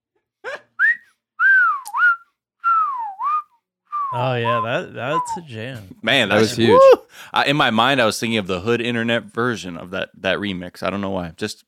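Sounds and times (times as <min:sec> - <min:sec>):
person whistling a short song melody: 0:00.8 - 0:05.4
speech: 0:04.1 - 0:11.6.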